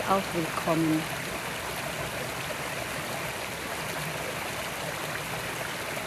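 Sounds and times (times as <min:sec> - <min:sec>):
babbling stream water gurgling and splashing: 0:00.0 - 0:06.0
speech: 0:00.1 - 0:01.2.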